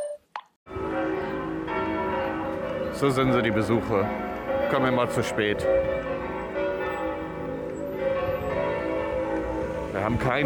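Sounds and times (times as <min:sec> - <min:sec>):
church bells striking the hour: 0:00.7 - 0:10.4
speech: 0:03.0 - 0:06.1, 0:10.0 - 0:10.4.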